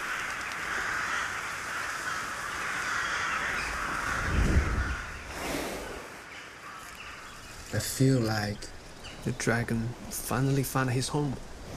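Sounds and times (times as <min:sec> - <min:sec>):
crows cawing in park trees: 0:00.0 - 0:05.4, 0:06.2 - 0:07.5
low rumble of wind: 0:00.0 - 0:11.7
speech: 0:07.8 - 0:11.5.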